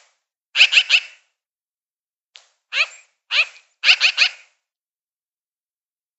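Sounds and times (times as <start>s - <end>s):
magpie giving harsh rattling chatter calls: 0.6s - 1.1s, 2.8s - 4.4s.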